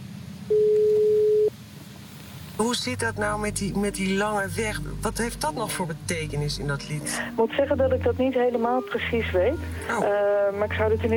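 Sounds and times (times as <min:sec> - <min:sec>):
telephone call tone beep while a call is being placed: 0:00.5 - 0:01.5
speech: 0:02.6 - 0:11.1.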